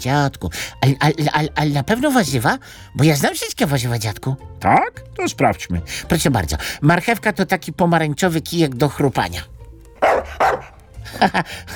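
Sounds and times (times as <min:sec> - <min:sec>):
speech: 0:00.0 - 0:10.4, 0:11.2 - 0:11.7
pet dog barking: 0:10.0 - 0:10.8.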